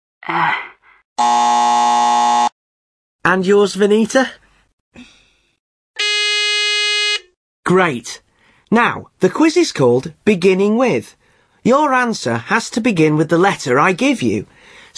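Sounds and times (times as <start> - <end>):
person giving a short vocal groan or exclamation: 0.2 - 1.0
speech: 0.2 - 2.1, 3.3 - 4.4, 7.7 - 14.8
electronic quiz buzzer triggered by pressing a button on a phone: 1.2 - 2.6, 6.0 - 7.3.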